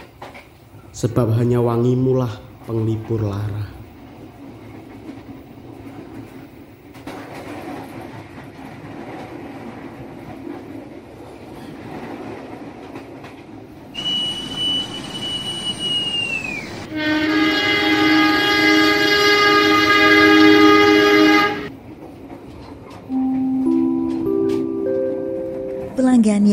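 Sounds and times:
passenger train running on rails: 0:00.0 - 0:26.5
speech: 0:01.0 - 0:03.8
thin train whistle: 0:14.0 - 0:17.0
passenger train horn blast: 0:14.0 - 0:21.7
short rising chime melody: 0:23.1 - 0:26.0.

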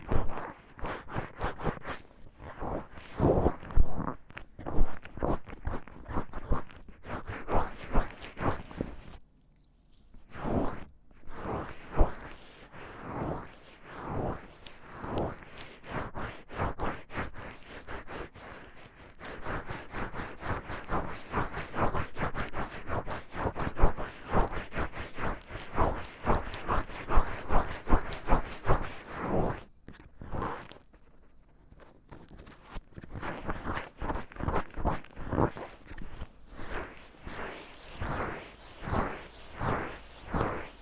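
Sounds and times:
wet ear massage with lotion rubbing and squelching: 0:00.0 - 0:40.8.

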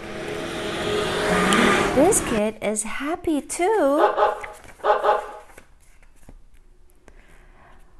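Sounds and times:
school bus low engine drone approaching: 0:00.0 - 0:02.4
speech: 0:02.0 - 0:05.3.

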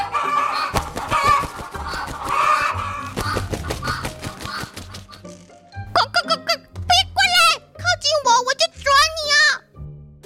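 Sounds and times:
caged chickens clucking and squawking excitedly: 0:00.0 - 0:05.3
person talking: 0:05.9 - 0:09.6.

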